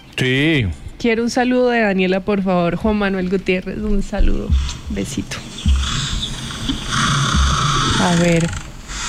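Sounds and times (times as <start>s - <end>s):
speech: 0.2s - 5.5s, 8.0s - 8.6s
person imitating a lion's snoring growl: 7.1s - 8.8s.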